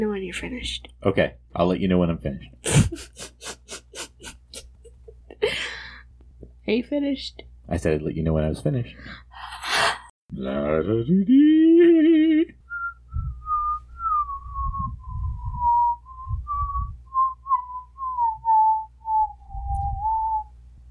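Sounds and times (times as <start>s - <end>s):
speech: 0.0s - 4.4s, 6.7s - 9.6s, 10.3s - 12.6s
person whistling a bouncy circus march melody: 12.7s - 20.5s.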